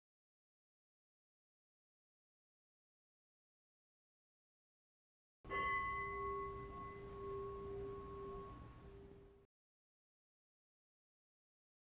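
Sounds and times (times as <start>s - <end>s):
meditation bell struck to end a meditation: 5.5s - 9.4s.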